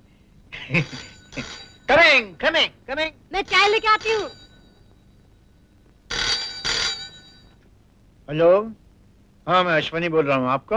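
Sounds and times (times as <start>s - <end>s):
telephone ringing with bright electronic trill: 0.6s - 2.4s, 3.3s - 7.7s
speech: 0.7s - 4.4s, 8.3s - 8.8s, 9.5s - 10.7s.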